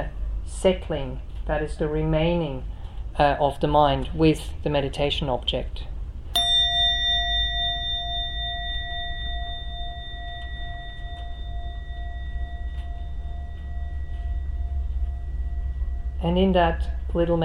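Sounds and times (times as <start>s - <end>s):
speech: 0.0s - 5.9s, 16.2s - 17.4s
low rumble: 0.0s - 17.4s
singing bowl struck and ringing: 6.3s - 17.4s.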